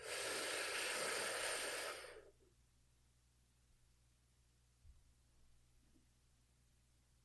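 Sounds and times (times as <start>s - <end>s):
deep breath during a guided relaxation exercise: 0.0s - 2.4s
faint low hum: 2.1s - 7.2s.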